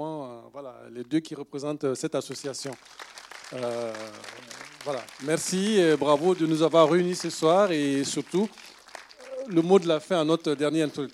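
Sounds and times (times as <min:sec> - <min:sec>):
speech: 0:01.0 - 0:08.7, 0:09.5 - 0:11.1
crowd applauding in a room: 0:02.3 - 0:11.1.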